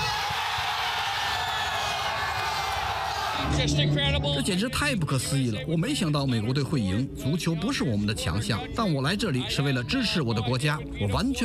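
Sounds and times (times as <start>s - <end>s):
scattered shouts: 0.0s - 3.5s
large crowd roaring and cheering in celebration: 0.0s - 3.7s
speech: 3.4s - 11.4s.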